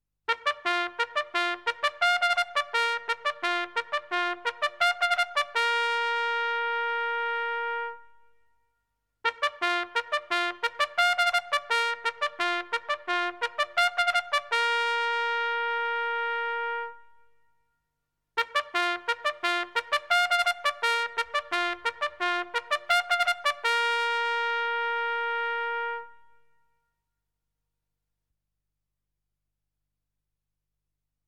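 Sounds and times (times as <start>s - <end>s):
military trumpet: 0.3s - 8.4s, 9.2s - 17.5s, 18.4s - 26.8s.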